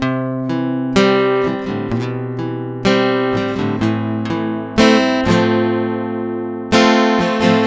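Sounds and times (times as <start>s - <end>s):
acoustic guitar in B minor: 0.0s - 7.6s.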